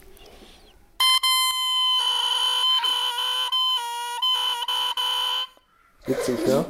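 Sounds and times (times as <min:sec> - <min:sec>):
bare cane oboe reed blown alone squawking: 0:01.3 - 0:05.8
speech: 0:06.1 - 0:06.6.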